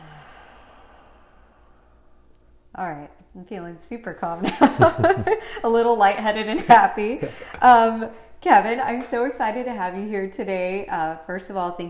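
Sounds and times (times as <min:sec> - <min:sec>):
deep breath in and out during a calming breathing exercise: 0:00.0 - 0:02.2
speech: 0:02.8 - 0:11.8
laughter: 0:04.4 - 0:05.6, 0:06.5 - 0:07.9.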